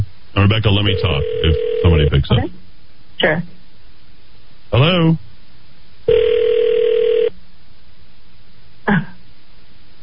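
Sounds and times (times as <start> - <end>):
speech: 0.4 - 2.6, 3.2 - 3.6, 4.7 - 5.2
ringback tone from an outgoing phone call: 0.9 - 2.1, 6.1 - 7.3.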